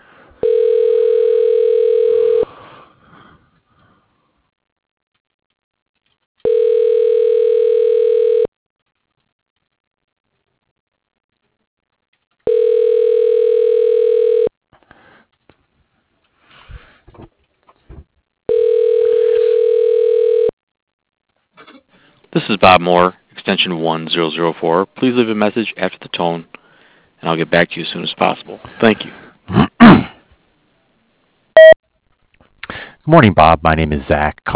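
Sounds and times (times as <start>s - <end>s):
telephone ringback tone while an extension is dialed: 0.4s - 2.5s, 6.4s - 8.5s, 12.5s - 14.5s, 18.5s - 20.5s, 31.6s - 31.8s
speech: 22.6s - 26.6s, 27.2s - 29.6s, 33.1s - 34.5s.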